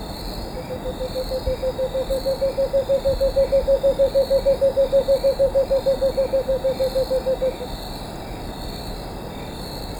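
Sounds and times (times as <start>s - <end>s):
Cinnamon screech owl song in Ecuador: 0.5s - 7.7s.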